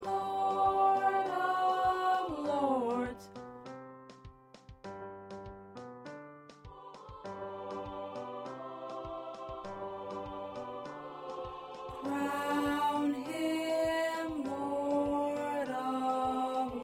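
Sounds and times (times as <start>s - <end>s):
second tenor voice singing: 0.0s - 3.2s, 6.8s - 16.8s.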